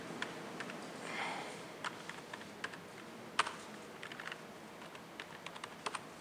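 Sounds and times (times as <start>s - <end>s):
typing on a computer keyboard: 0.2s - 0.8s, 1.8s - 2.8s, 3.4s - 6.1s.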